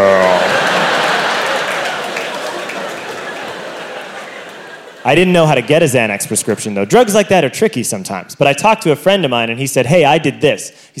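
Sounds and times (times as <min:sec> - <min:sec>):
audience clapping softly: 0:00.0 - 0:05.1
laughter: 0:00.0 - 0:06.8
speech: 0:05.1 - 0:10.9.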